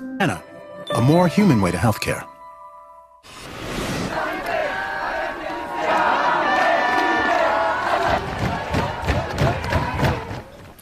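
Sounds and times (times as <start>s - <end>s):
speech: 0.2s - 2.3s
large street protest crowd chanting loudly in unison: 4.0s - 10.4s
drums banging in an uneven rhythm at a street protest: 7.9s - 10.5s.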